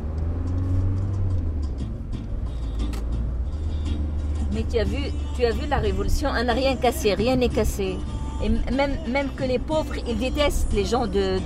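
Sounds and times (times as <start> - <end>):
large car engine passing by with road noise: 0.0 - 4.6
speech: 4.6 - 11.4.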